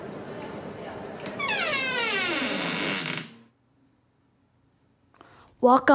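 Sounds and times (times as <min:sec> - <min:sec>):
train car door creaking open: 0:01.2 - 0:03.5
speech: 0:05.6 - 0:05.9.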